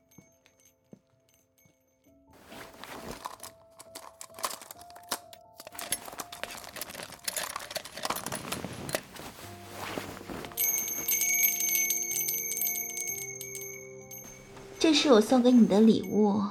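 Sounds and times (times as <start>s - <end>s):
small bell jingling and ringing: 0.0s - 2.3s, 10.5s - 16.4s
speech: 14.8s - 16.4s.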